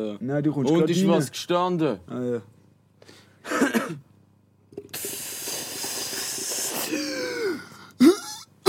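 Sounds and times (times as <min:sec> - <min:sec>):
speech: 0:00.0 - 0:03.2
person coughing into the microphone: 0:03.4 - 0:04.0, 0:06.8 - 0:08.6
long loud breathy hiss: 0:04.8 - 0:08.2.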